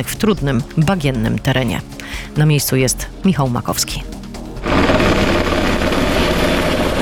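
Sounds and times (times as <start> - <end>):
speech: 0.0 - 4.2
police Black Hawk helicopter rotor and engine thrumming: 4.6 - 7.0.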